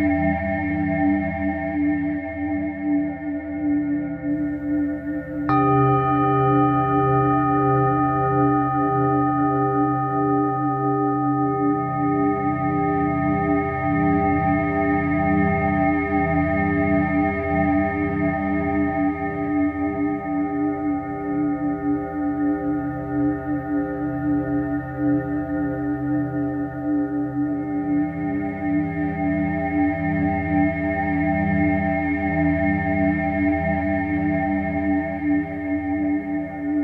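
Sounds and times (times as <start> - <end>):
singing bowl humming in a layered drone: 0.0 - 36.8
soft upper shimmer: 4.4 - 16.4
singing bowl strike with bright ring: 5.3 - 15.2.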